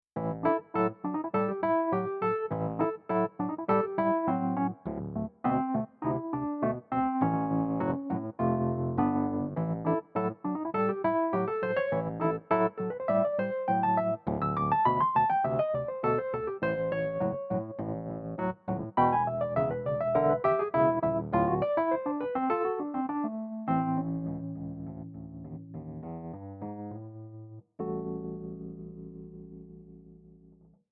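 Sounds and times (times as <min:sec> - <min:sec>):
reed electric piano: 0:00.2 - 0:30.7.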